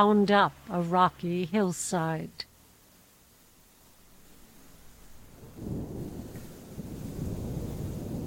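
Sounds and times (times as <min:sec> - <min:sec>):
speech: 0:00.0 - 0:02.5
thunder rumbling low and heavy: 0:04.7 - 0:08.2.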